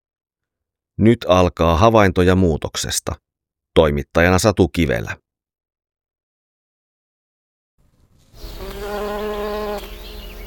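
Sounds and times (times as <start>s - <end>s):
speech: 1.0s - 5.2s
honeybees buzzing: 8.2s - 10.4s.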